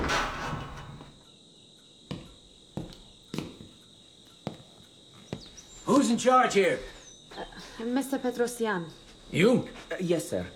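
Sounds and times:
front door opening with a brief rushing scrape: 0:00.0 - 0:01.1
sharp clunks and knocks: 0:00.0 - 0:01.1
steady high insect chirr: 0:00.0 - 0:10.5
speech: 0:05.9 - 0:10.5.

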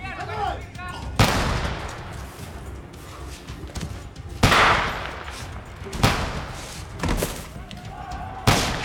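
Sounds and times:
gunshots of prisoners being executed: 0:01.2 - 0:02.5, 0:04.3 - 0:07.6, 0:08.3 - 0:08.8.

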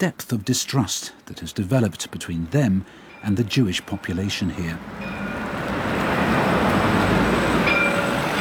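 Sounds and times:
speech: 0:00.0 - 0:05.3
city light rail train passing in Jerusalem: 0:02.4 - 0:08.3
faint high squeal of light rail train: 0:06.8 - 0:08.3.

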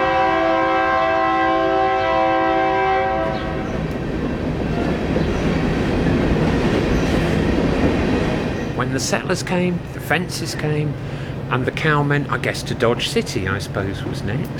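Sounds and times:
Union Pacific train horn blaring: 0:00.0 - 0:03.9
Union Pacific train passing with rumble and clatter: 0:00.0 - 0:14.5
speech: 0:09.0 - 0:14.5.

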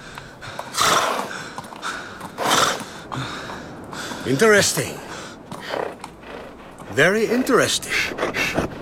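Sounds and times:
horse neighing and snorting: 0:00.7 - 0:01.3
speech: 0:04.2 - 0:05.1, 0:06.9 - 0:08.7.

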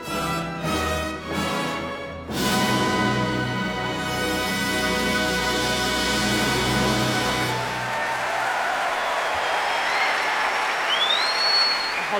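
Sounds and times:
orchestra holding a sustained chord: 0:00.3 - 0:07.9
large concert audience applause: 0:05.5 - 0:12.1
audience whistles: 0:09.0 - 0:12.1.

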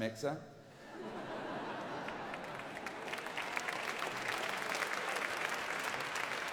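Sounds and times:
speech: 0:00.0 - 0:01.1
laughter: 0:00.8 - 0:03.0
crowd applauding: 0:01.8 - 0:06.5.

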